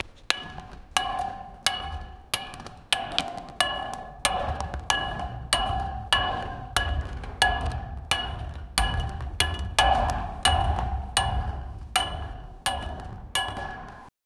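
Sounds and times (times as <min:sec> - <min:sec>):
footsteps of a player with a metal foot: 0:00.0 - 0:14.1.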